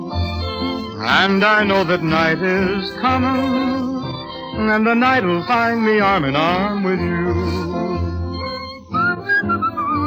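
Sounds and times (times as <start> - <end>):
person whistling a melody: 0.2 - 10.0
speech: 1.0 - 4.0, 4.6 - 8.0.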